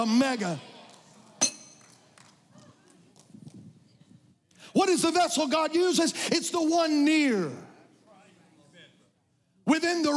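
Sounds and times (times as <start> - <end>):
speech: 0.0 - 0.7, 4.7 - 7.7, 9.7 - 10.1
single sharp glass clink as glass is handled: 1.4 - 2.0.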